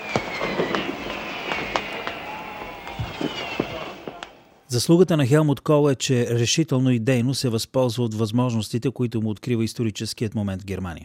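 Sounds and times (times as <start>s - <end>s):
fireworks cracking and popping at a celebration at the Brandenburg Gate in Berlin: 0.0s - 4.6s
faint whistling tone: 0.0s - 4.7s
crowd murmur at a celebration: 0.2s - 4.6s
speech: 4.7s - 11.0s.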